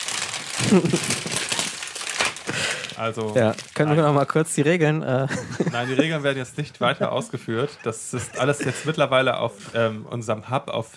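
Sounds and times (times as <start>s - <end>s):
paper prize bag stuffed with paper slips being shaken: 0.0s - 4.1s
laughter: 0.6s - 1.4s, 5.2s - 9.4s
speech: 0.6s - 1.4s, 3.0s - 10.9s.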